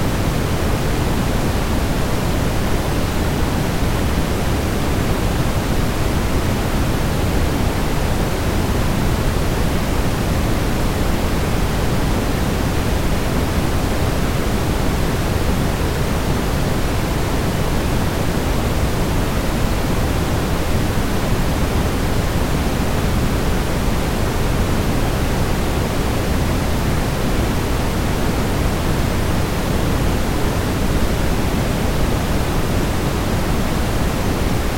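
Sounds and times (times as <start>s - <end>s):
white noise hiss: 0.0s - 34.7s.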